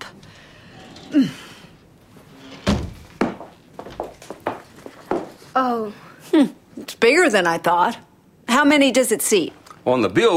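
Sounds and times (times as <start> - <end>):
heavy auditorium doors of a floating theater swinging open: 0.0 - 3.6
speech: 1.1 - 1.4, 5.6 - 10.3.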